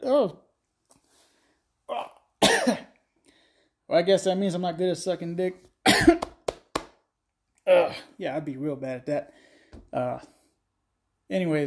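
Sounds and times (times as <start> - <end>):
speech: 0.2 - 0.4, 4.0 - 6.3, 7.7 - 10.4, 11.3 - 11.6
person hiccuping while drinking a beverage: 1.9 - 2.8.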